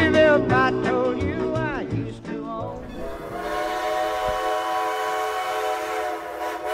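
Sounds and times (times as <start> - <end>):
rumbling rail noise of a passing train: 0.2 - 6.7
long steady loud train horn blast: 2.8 - 6.7.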